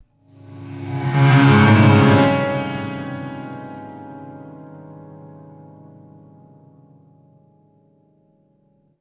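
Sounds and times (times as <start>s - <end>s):
eerie designed prepared piano glissando: 0.4s - 6.7s.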